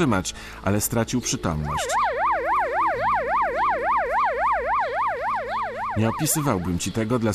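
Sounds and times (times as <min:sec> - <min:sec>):
speech: 0:00.0 - 0:02.2, 0:06.0 - 0:07.3
low traffic rumble: 0:00.0 - 0:07.3
ambulance siren wailing: 0:01.4 - 0:07.3.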